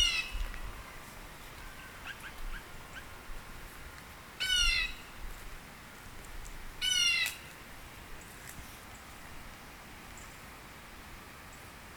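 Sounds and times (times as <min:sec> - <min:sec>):
bird giving harsh nasal squawks in Northern Illinois: 0:00.0 - 0:00.4, 0:04.4 - 0:05.0.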